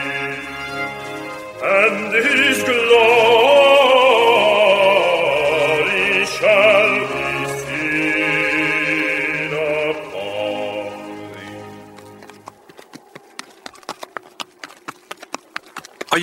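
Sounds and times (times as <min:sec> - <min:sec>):
donkey hooves clip-clopping while walking carrying a pregnant woman: 0:00.0 - 0:06.4, 0:10.0 - 0:16.2
sustained music: 0:00.0 - 0:12.5
speech: 0:01.9 - 0:03.1.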